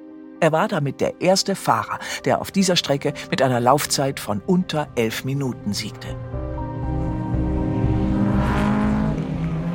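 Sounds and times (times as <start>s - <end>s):
speech: 0.4s - 6.4s
Audi Sport Quattro S1 rally car engine roaring: 6.6s - 9.7s.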